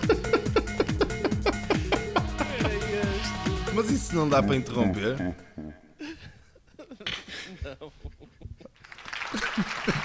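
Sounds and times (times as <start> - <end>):
people laughing: 0.0 - 3.2, 5.2 - 10.0
speech: 3.8 - 5.5
applause sound effect played from a soundboard: 8.8 - 10.0.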